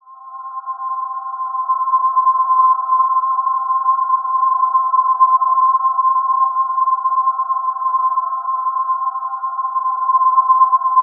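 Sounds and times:
atmospheric synth pad in C: 0.0 - 11.0.

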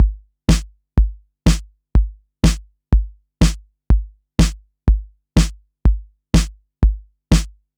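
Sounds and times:
kick drums: 0.0 - 7.6.

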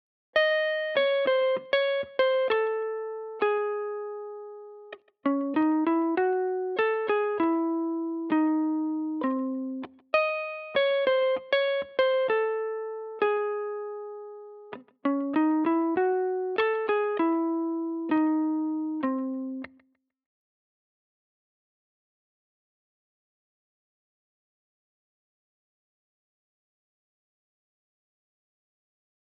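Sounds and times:
dry guitar riff loop in C minor: 0.4 - 19.8.

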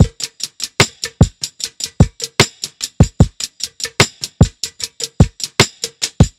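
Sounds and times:
drum loop: 0.0 - 6.3.

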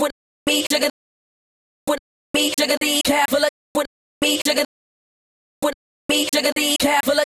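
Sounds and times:
vocal chops in D at 128 bpm: 0.0 - 1.0, 1.9 - 4.7, 5.6 - 7.3.

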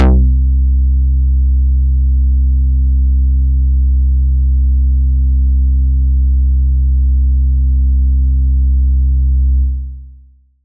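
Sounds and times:
quick bass: 0.0 - 10.6.

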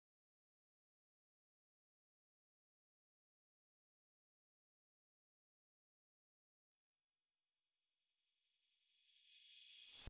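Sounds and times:
reverse crash cymbal: 8.6 - 10.0.

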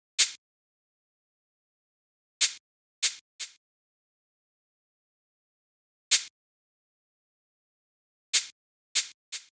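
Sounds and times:
shaker: 0.2 - 0.4, 2.4 - 3.6, 6.1 - 6.4, 8.4 - 9.5.

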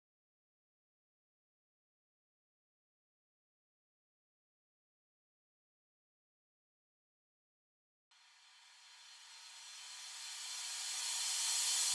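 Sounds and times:
drums: 8.3 - 11.9.

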